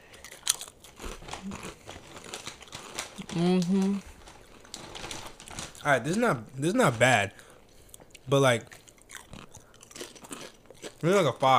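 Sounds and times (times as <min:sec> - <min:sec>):
crunchy munching on a snack: 0:00.0 - 0:06.2, 0:07.8 - 0:11.5
speech: 0:01.4 - 0:01.8, 0:03.4 - 0:04.1, 0:05.8 - 0:07.4, 0:08.3 - 0:08.7, 0:11.0 - 0:11.5.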